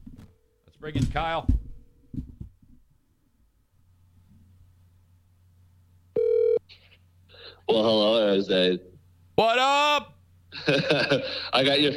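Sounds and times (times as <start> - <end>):
low steady hum: 0.0 - 11.9
speech: 0.8 - 1.6, 7.7 - 11.9
telephone ringing: 6.2 - 6.6
laughter: 10.5 - 11.9.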